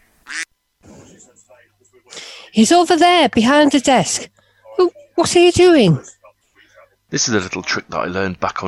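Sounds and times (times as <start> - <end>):
duck quacking in a radio studio: 0.2 - 0.5
speech: 2.0 - 6.1, 7.1 - 8.6.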